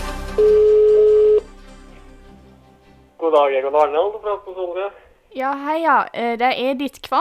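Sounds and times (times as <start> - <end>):
telephone ringing tone of a call to a restaurant: 0.4 - 1.5
speech: 3.3 - 7.2.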